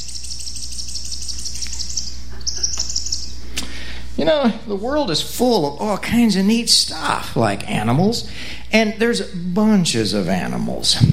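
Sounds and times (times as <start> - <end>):
swung toy making bird-like chirps: 0.0 - 3.4
faint low hum: 0.0 - 11.1
speech: 4.3 - 11.1.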